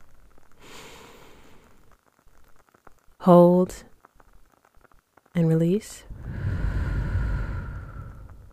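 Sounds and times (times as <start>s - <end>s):
slow deep breath in during a guided breathing exercise: 0.6s - 1.8s, 6.1s - 8.5s
speech: 3.2s - 3.9s, 5.4s - 6.1s.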